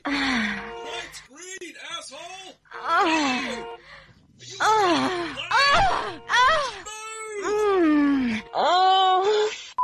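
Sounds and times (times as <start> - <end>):
woman moaning ecstatically: 2.7 - 3.6, 4.6 - 6.8, 7.4 - 9.5.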